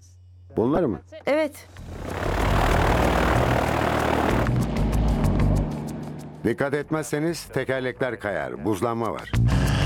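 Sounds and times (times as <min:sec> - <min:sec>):
speech: 0:00.5 - 0:02.0, 0:06.4 - 0:09.6
propeller airplane engine roaring during takeoff: 0:01.7 - 0:06.4.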